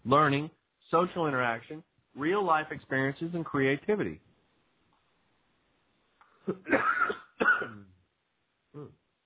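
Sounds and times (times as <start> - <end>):
speech: 0.0 - 4.3, 6.4 - 7.8, 8.8 - 9.0
person coughing while choking: 6.4 - 7.9
person clearing throat: 6.4 - 8.0, 8.8 - 9.0.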